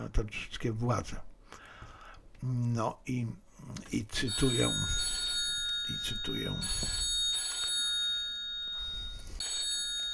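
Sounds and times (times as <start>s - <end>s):
speech: 0.0s - 1.3s, 2.4s - 5.1s, 5.9s - 7.0s
telephone ringing with metallic bell-like tone: 4.2s - 10.1s.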